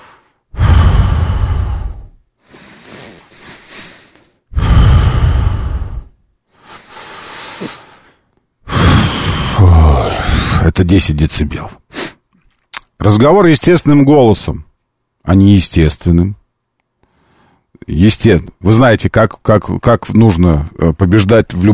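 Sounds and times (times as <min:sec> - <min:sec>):
slow steady breathing: 0:00.0 - 0:10.6, 0:17.0 - 0:17.7
speech: 0:10.9 - 0:11.8, 0:13.0 - 0:16.4, 0:17.8 - 0:21.7.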